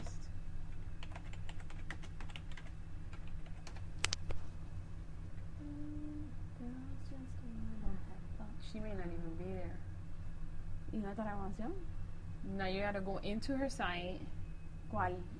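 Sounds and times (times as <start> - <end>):
low hum: 0.0 - 15.3
typing on a computer keyboard: 0.7 - 4.2
faint tonal sounds: 4.8 - 15.3
speech: 8.7 - 9.8, 10.9 - 14.3, 14.9 - 15.3.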